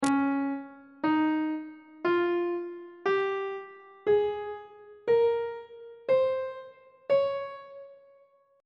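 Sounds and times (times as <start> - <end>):
music in C sharp Lydian mode: 0.0 - 8.6.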